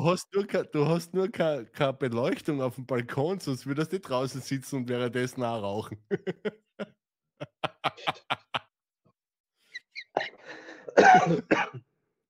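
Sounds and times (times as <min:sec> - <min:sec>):
speech: 0:00.0 - 0:06.9, 0:07.9 - 0:08.4, 0:11.0 - 0:11.8
laughter: 0:05.8 - 0:08.7
person coughing: 0:07.8 - 0:08.4, 0:10.2 - 0:11.8
person clearing throat: 0:10.2 - 0:11.8.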